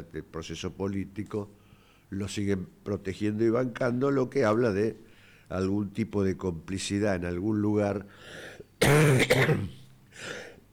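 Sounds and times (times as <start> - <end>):
speech: 0.0 - 10.4
person clearing throat: 8.8 - 10.6
person having a coughing fit: 8.8 - 10.6.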